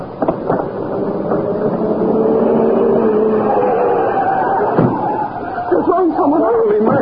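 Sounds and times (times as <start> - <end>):
car engine roaring as it speeds past: 0.0 - 6.9.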